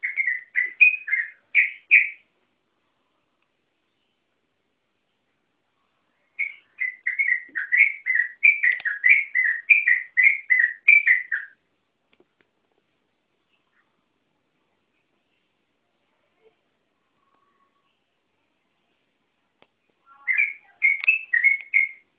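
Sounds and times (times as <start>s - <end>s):
yellow-vented bulbul giving chattering whistled song: 0.0s - 2.2s, 6.4s - 11.6s, 20.0s - 22.1s.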